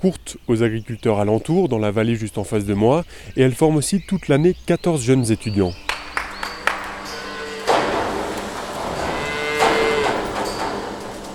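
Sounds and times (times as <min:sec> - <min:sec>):
speech: 0:00.0 - 0:05.9
cows mooing in a milking parlour at a farming school in Georgia: 0:05.8 - 0:11.3
taps and clanks while cows are moved into a milking parlour: 0:05.9 - 0:11.3
steady mechanical hum in a milking parlour: 0:06.8 - 0:11.3.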